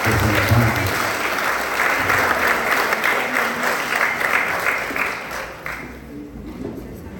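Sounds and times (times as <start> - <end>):
sustained applause from a large audience: 0.0 - 6.1.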